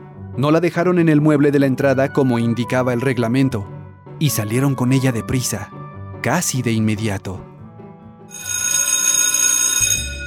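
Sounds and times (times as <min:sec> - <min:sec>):
speech: 0:00.4 - 0:07.5
electric school recess bell ringing: 0:08.3 - 0:10.2.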